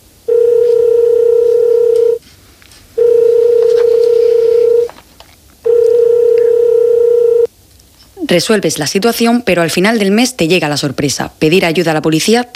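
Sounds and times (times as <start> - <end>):
telephone line tone: 0.2 - 2.2, 3.0 - 5.0, 5.6 - 7.5
speech: 8.3 - 12.5.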